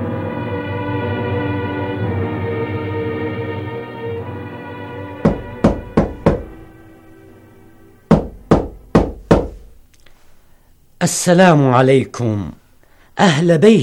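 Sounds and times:
low sustained musical drone: 0:00.0 - 0:08.1
sharp knocks on a door: 0:05.2 - 0:06.7, 0:08.1 - 0:09.8
speech: 0:11.0 - 0:12.6, 0:13.2 - 0:13.8.

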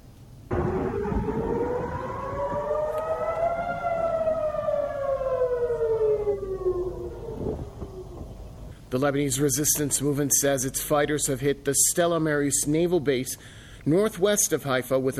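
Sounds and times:
low rumble: 0:00.0 - 0:09.4
air raid siren wailing near Haifa after a missile attack: 0:00.5 - 0:08.8
speech: 0:09.0 - 0:15.1.

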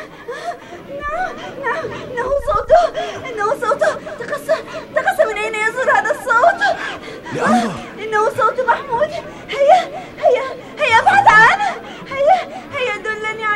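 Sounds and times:
crowd chatter and voices: 0:00.6 - 0:13.5
laughter: 0:06.4 - 0:07.9, 0:10.9 - 0:12.4
child crying in high-pitched bursts: 0:07.3 - 0:07.9.

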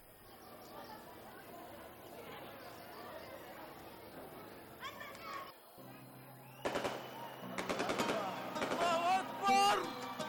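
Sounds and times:
crowd chatter: 0:00.0 - 0:10.2
children's voices: 0:00.7 - 0:05.6
firecrackers popping over a school after prayers: 0:06.6 - 0:09.4.

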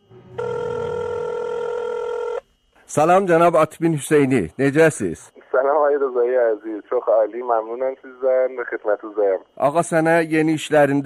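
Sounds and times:
telephone ringing with a steady electronic tone: 0:00.4 - 0:02.4
speech: 0:02.9 - 0:11.0.

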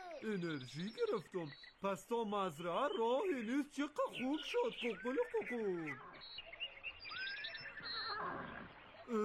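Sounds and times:
speech: 0:00.2 - 0:06.1, 0:09.1 - 0:09.2
horse neighing: 0:07.9 - 0:08.7.

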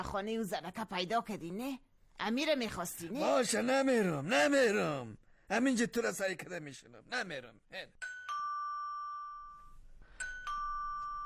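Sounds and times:
speech: 0:00.0 - 0:08.1
doorbell chimes at the gate of a house: 0:08.0 - 0:11.2
tinkling tone: 0:08.0 - 0:11.2.

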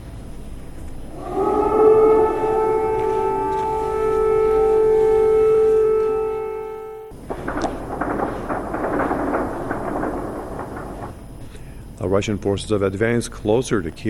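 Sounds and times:
rough noisy outdoor rumble: 0:00.0 - 0:12.0
air raid siren wailing: 0:01.1 - 0:11.3
speech: 0:12.2 - 0:14.0.

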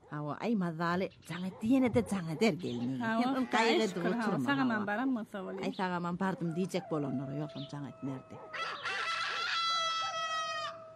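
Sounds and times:
speech: 0:00.1 - 0:08.9
rooster crowing: 0:06.5 - 0:10.9.

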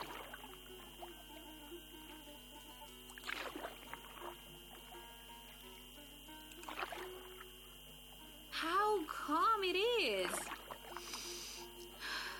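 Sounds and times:
oars splashing in sea water from a rowboat: 0:00.0 - 0:07.6, 0:10.2 - 0:11.3
steady low hum: 0:00.0 - 0:12.3.

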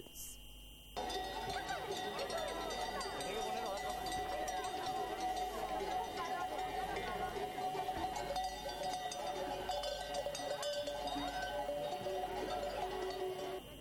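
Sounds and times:
cowbells on sheep and goats clanking and ringing: 0:01.0 - 0:13.8
laughter: 0:01.0 - 0:13.8
murmur of crowd chatter: 0:01.0 - 0:13.8.

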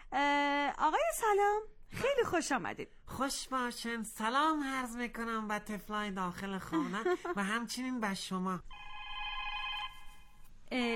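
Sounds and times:
speech: 0:00.1 - 0:08.9, 0:10.7 - 0:10.9
telephone ringing in a radio studio: 0:08.7 - 0:10.4.

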